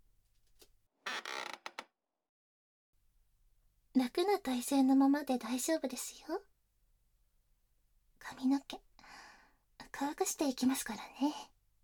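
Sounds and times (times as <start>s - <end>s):
salon chair creaking and groaning as it is raised upright: 1.1s - 1.9s
speech: 4.0s - 6.5s, 10.0s - 11.5s.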